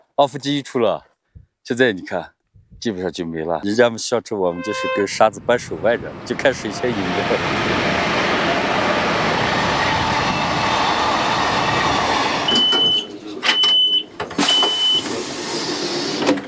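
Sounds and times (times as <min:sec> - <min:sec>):
speech: 0:00.2 - 0:08.0
train rolling into Golmud railway station on the Qinghai-Tibet Railway: 0:04.5 - 0:13.4
high squeals of train slowing: 0:04.6 - 0:05.3, 0:06.4 - 0:15.1.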